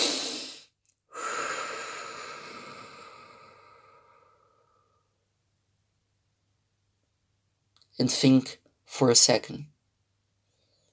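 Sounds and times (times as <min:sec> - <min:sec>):
deep breathing: 0:00.0 - 0:05.2
speech: 0:08.0 - 0:09.7.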